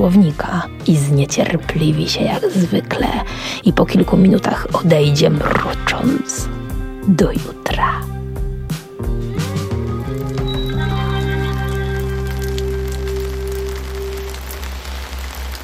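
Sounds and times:
speech: 0.0 - 8.1
rain falling: 4.8 - 6.5, 9.4 - 15.6.

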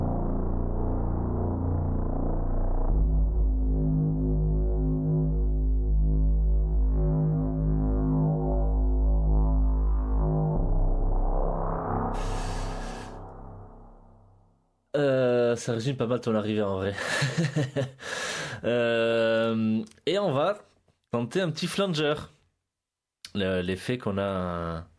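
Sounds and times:
low droning tone processed with autofilter and reverb: 0.0 - 14.8
speech: 15.0 - 22.4, 23.4 - 24.9.

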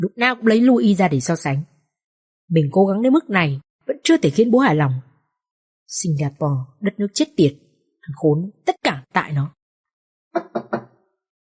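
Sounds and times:
speech: 0.0 - 1.7, 2.5 - 5.1, 5.9 - 9.6
knocking on the door of a restroom stall: 10.4 - 10.9.

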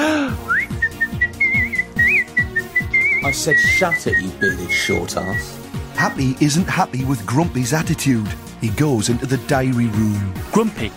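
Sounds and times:
people whistling a tune: 0.2 - 5.6
speech: 3.3 - 10.9.

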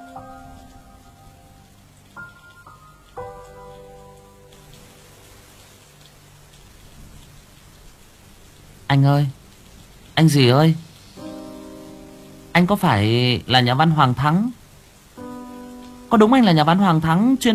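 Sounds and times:
soft sustained music tones: 0.0 - 6.6, 10.2 - 17.5
steady rain pouring onto a flooded road: 0.0 - 17.5
speech: 8.9 - 9.4, 10.2 - 10.9, 12.6 - 14.6, 16.1 - 17.5.

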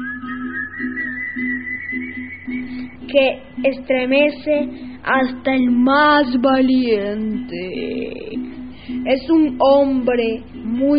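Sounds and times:
eerie drawn-out whistle: 0.0 - 3.1
speech: 3.1 - 8.4, 9.0 - 10.9.

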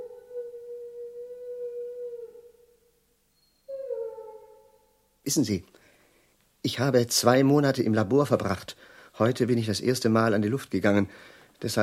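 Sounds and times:
dog howling: 0.0 - 2.6, 3.7 - 4.6
speech: 5.2 - 5.8, 6.6 - 11.8.

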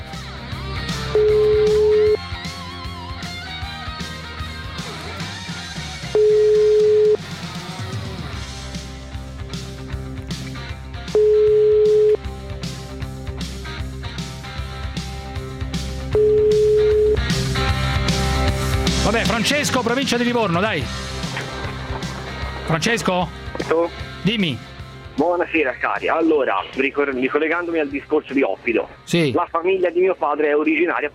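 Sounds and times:
music: 0.0 - 31.1
telephone ringing tone beeps while a call waits: 1.1 - 2.2, 6.1 - 7.2, 11.1 - 12.2, 16.1 - 17.4
speech: 19.8 - 21.0, 22.7 - 31.1.

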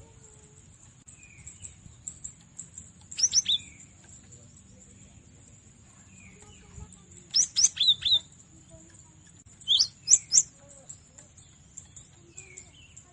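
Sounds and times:
cinereous tit chirping: 1.4 - 5.2, 6.4 - 13.1.

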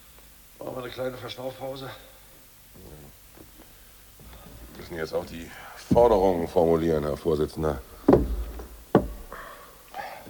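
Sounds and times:
speech: 0.6 - 2.2, 4.8 - 8.3
notice being nailed onto a door: 8.0 - 9.4.

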